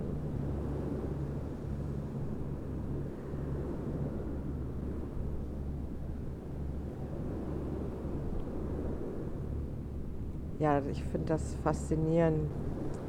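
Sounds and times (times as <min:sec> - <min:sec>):
ocean waves rolling in: 0:00.0 - 0:13.0
speech: 0:10.6 - 0:12.7.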